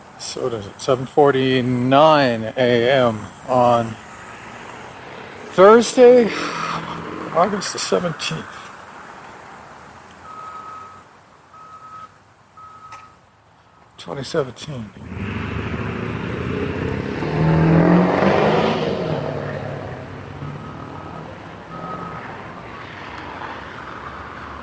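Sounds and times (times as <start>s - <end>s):
heavy truck diesel engine rumbling: 0.0s - 24.6s
speech: 0.3s - 4.1s, 5.6s - 6.6s, 7.4s - 8.6s, 14.0s - 15.6s
heavy dump truck reversing with backup beeps: 10.2s - 14.0s, 19.8s - 22.6s.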